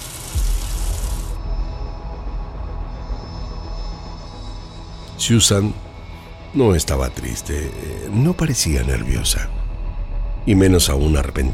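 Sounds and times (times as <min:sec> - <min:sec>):
water running from a laundry-room tap: 0:00.0 - 0:01.4
speech: 0:05.2 - 0:05.9, 0:06.5 - 0:09.6, 0:10.4 - 0:11.5.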